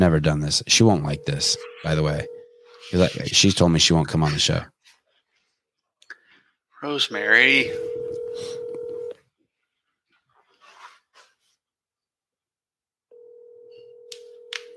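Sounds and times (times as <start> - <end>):
speech: 0.0 - 4.8, 6.8 - 8.6
phone line tone: 0.7 - 3.4, 7.6 - 9.2, 13.1 - 14.7
breathing: 6.2 - 6.6, 8.2 - 9.0
soft rustles: 9.6 - 11.6.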